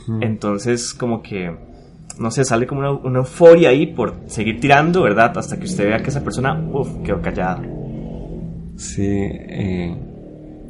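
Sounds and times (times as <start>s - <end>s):
speech: 0.0s - 7.8s, 8.8s - 10.1s
motorcycle engine revving outside: 3.6s - 10.6s.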